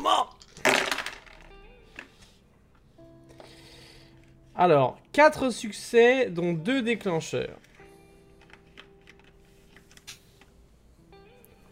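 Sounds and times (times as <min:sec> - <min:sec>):
dice clattering during a tabletop role-playing game roll: 0:00.3 - 0:01.5
speech: 0:04.6 - 0:07.7.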